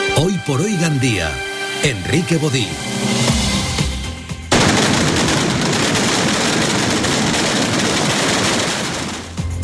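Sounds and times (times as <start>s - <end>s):
speech: 0.2s - 3.1s
kilometre-long string of firecrackers at a patron saint festival: 4.5s - 9.6s.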